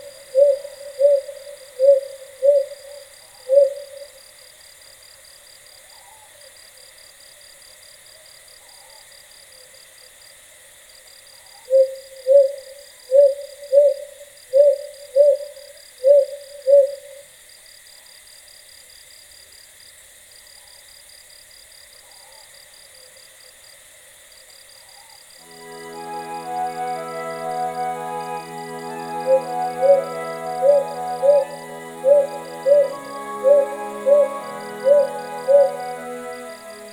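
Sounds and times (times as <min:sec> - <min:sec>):
night insects humming: 0:00.0 - 0:36.9
Ryukyu green pigeons calling at night over rural hills in Okinawa: 0:25.8 - 0:36.7.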